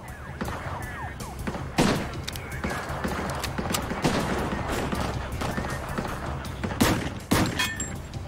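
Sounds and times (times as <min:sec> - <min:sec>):
gunfire in a shootout with shots fired in both directions: 0:01.4 - 0:07.7.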